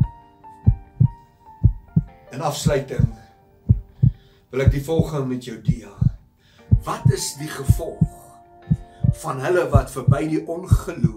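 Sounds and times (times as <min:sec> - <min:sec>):
heartbeat thumping: 0:00.7 - 0:02.1, 0:02.7 - 0:05.1, 0:05.7 - 0:09.2, 0:09.8 - 0:11.1
speech: 0:02.3 - 0:03.2, 0:04.5 - 0:06.0, 0:06.8 - 0:08.2, 0:09.2 - 0:11.1.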